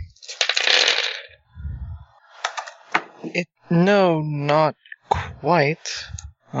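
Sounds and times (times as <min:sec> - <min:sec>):
dice rattling on a table: 0:00.2 - 0:01.4
speech: 0:03.2 - 0:06.5.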